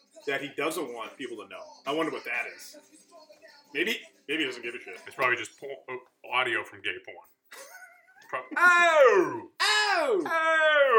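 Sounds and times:
speech: 0:00.2 - 0:07.6, 0:08.3 - 0:10.9
voice imitating heavy breathing and moaning: 0:08.6 - 0:10.9.

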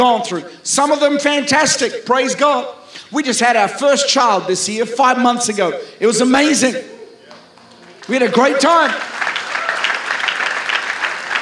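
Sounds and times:
speech: 0:00.0 - 0:07.0, 0:08.0 - 0:09.1
audience clapping: 0:07.3 - 0:11.4.

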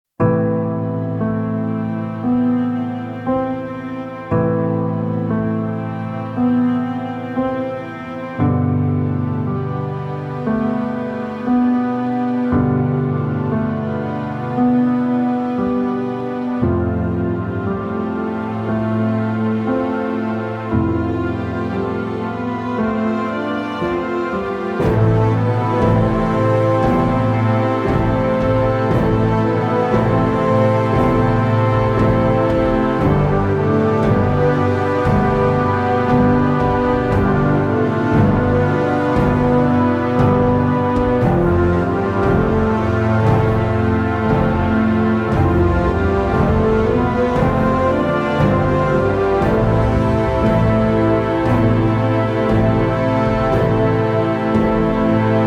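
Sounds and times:
piano: 0:00.0 - 0:55.4
strings: 0:00.2 - 0:55.4.

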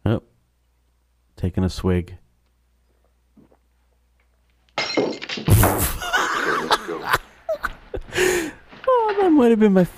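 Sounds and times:
speech: 0:01.4 - 0:02.2, 0:09.4 - 0:09.9
thrown glass shattering on the floor: 0:04.7 - 0:07.0
tinkling and clinking of glass shards settling: 0:04.8 - 0:06.2
laughter: 0:05.8 - 0:08.6.

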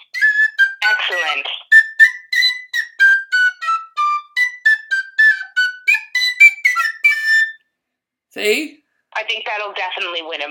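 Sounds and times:
speech: 0:01.1 - 0:01.6, 0:08.4 - 0:10.4
penny whistle melody: 0:01.7 - 0:07.6.

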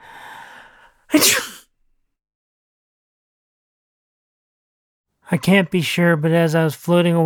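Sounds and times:
breathy inhale with a faint whistle: 0:00.0 - 0:01.1
speech: 0:01.1 - 0:01.5, 0:05.3 - 0:07.2
loud sneeze: 0:01.1 - 0:01.7.

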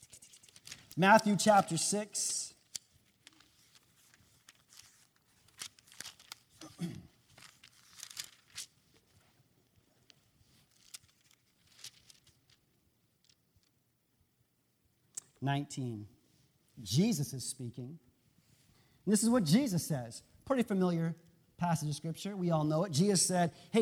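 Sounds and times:
pages of a book being turned: 0:00.0 - 0:12.6
speech: 0:01.0 - 0:02.4, 0:15.5 - 0:16.2, 0:16.8 - 0:18.1, 0:19.1 - 0:23.8.

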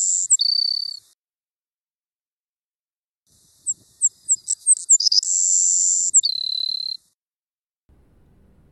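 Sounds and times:
male Savannah Sparrow song: 0:00.0 - 0:01.2, 0:03.3 - 0:07.2.

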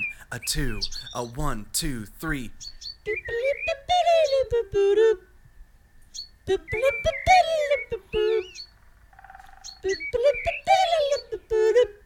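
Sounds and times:
speech: 0:00.3 - 0:03.2, 0:04.5 - 0:05.3, 0:06.5 - 0:08.7, 0:09.8 - 0:12.0
pet bird whistling a tune: 0:02.6 - 0:04.5, 0:06.1 - 0:08.8, 0:09.5 - 0:11.8.

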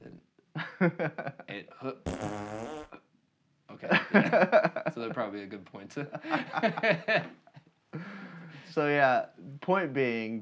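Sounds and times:
speech: 0:00.8 - 0:02.8, 0:03.8 - 0:07.4, 0:08.7 - 0:10.4
raspy fart sound effect: 0:02.1 - 0:03.0.

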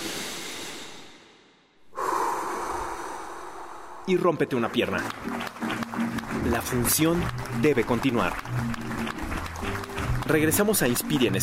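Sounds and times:
deep human breath: 0:00.0 - 0:04.1
speech: 0:04.1 - 0:05.6, 0:06.4 - 0:09.2, 0:10.3 - 0:11.4.

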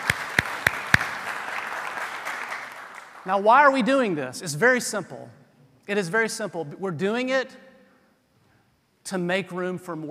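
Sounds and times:
church congregation clapping: 0:00.0 - 0:03.3
speech: 0:03.2 - 0:07.6, 0:09.0 - 0:10.0.

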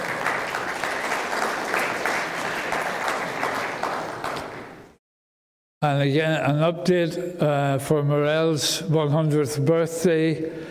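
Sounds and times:
room full of people applauding: 0:00.0 - 0:04.8
speech: 0:05.8 - 0:10.7.

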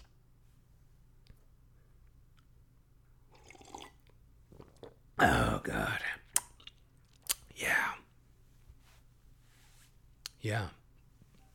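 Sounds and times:
slurping or gulping: 0:03.3 - 0:05.6
liquid drips and wet clicks: 0:06.3 - 0:07.5
speech: 0:10.4 - 0:10.8.

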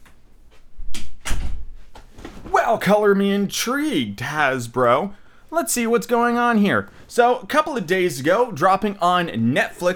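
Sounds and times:
door closing with a solid thump: 0:01.2 - 0:02.6
speech: 0:02.7 - 0:09.9.

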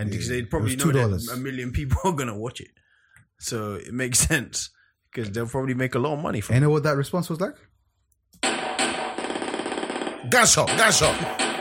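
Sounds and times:
person talking excitedly: 0:00.0 - 0:02.4, 0:10.3 - 0:11.3
speech: 0:00.0 - 0:02.8, 0:03.4 - 0:07.7, 0:10.2 - 0:11.5
automatic gunfire: 0:08.4 - 0:11.5.

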